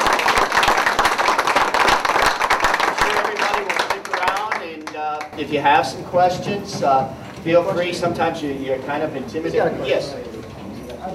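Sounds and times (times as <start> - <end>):
audience applause for a panel discussion: 0.0 - 5.4
speech: 5.4 - 10.3.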